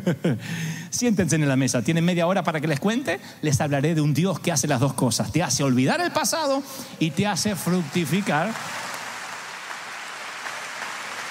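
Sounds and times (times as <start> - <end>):
speech: 0.0 - 8.8
audience applause during a religious sermon: 7.1 - 11.2.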